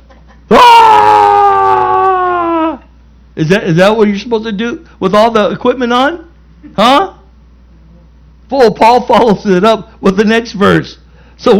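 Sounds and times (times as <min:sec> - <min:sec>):
man screaming: 0:00.5 - 0:02.9
speech: 0:03.4 - 0:07.2, 0:08.5 - 0:11.5.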